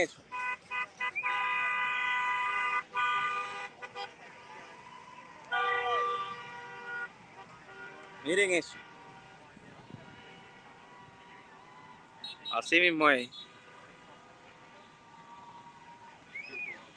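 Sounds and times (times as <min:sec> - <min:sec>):
speech: 0:00.0 - 0:00.3, 0:08.2 - 0:08.9, 0:12.6 - 0:13.5
car caravan horns honking in Doral: 0:00.0 - 0:04.7, 0:05.5 - 0:15.2
steady traffic noise: 0:00.0 - 0:16.9.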